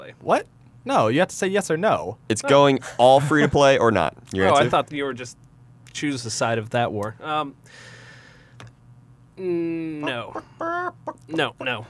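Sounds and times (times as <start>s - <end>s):
speech: 0.1s - 5.4s, 6.0s - 8.0s, 9.4s - 11.8s
chicken clucking and squawking: 10.0s - 11.8s.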